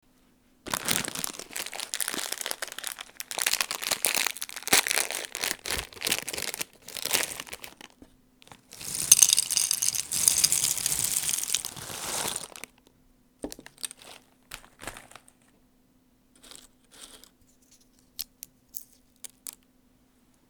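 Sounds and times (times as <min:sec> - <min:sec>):
bag of pistachios rustling: 0:00.7 - 0:12.7.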